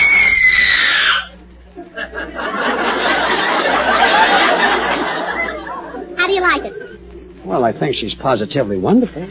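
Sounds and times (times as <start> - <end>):
woman letting out a loud shrill scream: 0.0 - 1.3
sustained audience laughter and clamor: 1.7 - 7.0
speech: 7.7 - 9.3.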